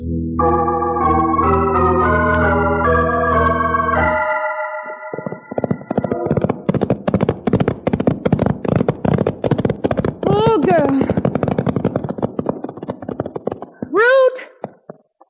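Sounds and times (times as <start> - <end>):
sustained musical chord: 0.0 - 5.3
speech: 0.4 - 0.7
horse hooves clip-clopping: 5.1 - 15.2.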